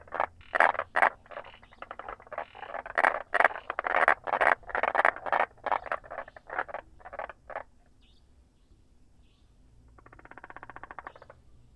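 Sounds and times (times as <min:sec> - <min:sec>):
frog rattling calls: 0:00.0 - 0:07.7, 0:09.9 - 0:11.4.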